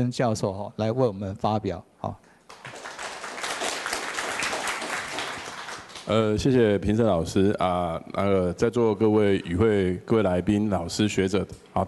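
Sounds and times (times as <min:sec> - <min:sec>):
speech: 0:00.0 - 0:02.7, 0:06.1 - 0:11.8
audience applause at an academic conference: 0:02.5 - 0:06.1.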